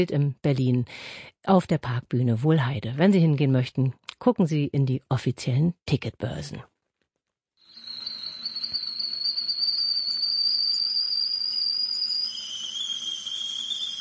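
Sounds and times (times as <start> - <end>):
speech: 0.0 - 6.7
whistling tea kettle: 7.6 - 14.0.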